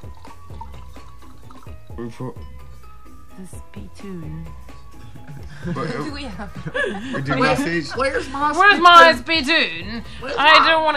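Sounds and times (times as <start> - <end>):
liquid being poured out in gurgling glugs: 0.0 - 2.1
speech: 2.0 - 2.6, 3.4 - 10.9
laughter: 5.3 - 9.1.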